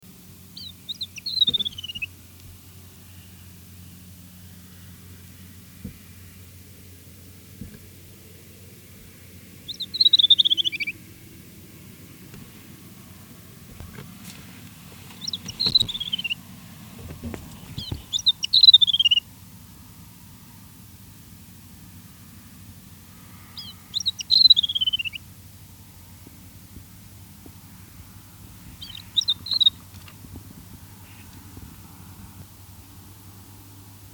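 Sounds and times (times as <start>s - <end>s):
Asian Desert Warbler singing: 0.1s - 6.9s, 7.7s - 12.4s, 14.9s - 19.4s, 23.0s - 32.8s.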